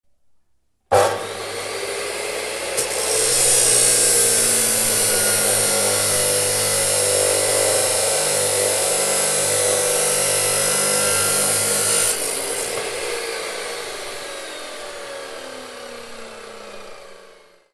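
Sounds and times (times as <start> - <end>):
steel cutting machine cutting metal: 0.9 - 15.0.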